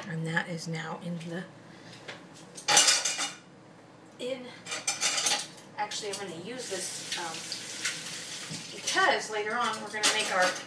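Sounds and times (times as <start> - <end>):
speech: 0.1 - 1.6, 4.2 - 4.9, 5.8 - 7.6, 8.5 - 10.6
metal cutlery clattering as a half-teaspoon measuring spoon is handled: 2.6 - 3.4, 4.8 - 5.5.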